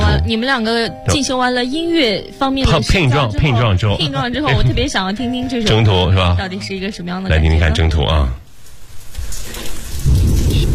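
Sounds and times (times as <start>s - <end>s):
speech: 0.2s - 8.4s
steady rain in the mountains: 8.5s - 10.7s
deep rumble of thunder in the mountains: 9.4s - 10.7s.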